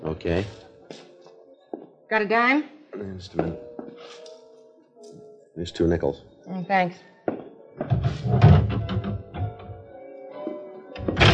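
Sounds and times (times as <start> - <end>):
speech: 0.2 - 1.0, 2.1 - 4.3, 5.6 - 7.1
wooden door being pulled shut with clunks, rattles and creak: 7.8 - 9.8, 11.0 - 11.3.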